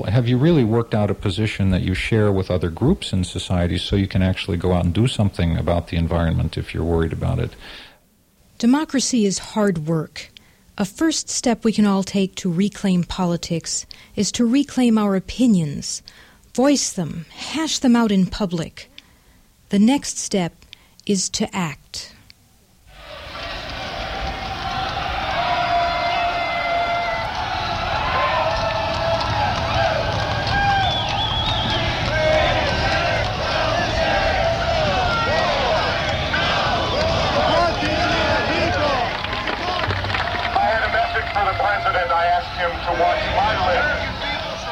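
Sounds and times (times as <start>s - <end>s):
speech: 0.0s - 7.9s, 8.6s - 18.9s, 19.7s - 22.2s
crowd screaming at a political rally: 22.9s - 44.7s.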